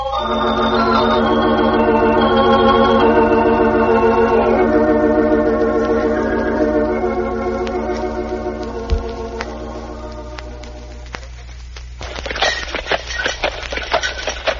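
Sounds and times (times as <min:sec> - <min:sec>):
sustained tonal hum: 0:00.0 - 0:14.5
horse hooves clip-clopping at a walking pace: 0:07.6 - 0:14.5
horse-drawn milk wagon rolling: 0:12.0 - 0:14.5.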